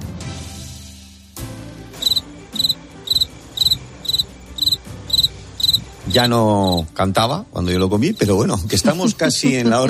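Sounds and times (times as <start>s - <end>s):
cricket chirping: 2.0s - 6.8s
speech: 6.1s - 9.8s.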